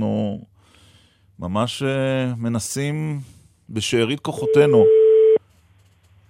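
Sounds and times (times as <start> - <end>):
speech: 0.0 - 0.5, 1.4 - 5.0
telephone ringback tone while calling a phone: 4.4 - 5.4.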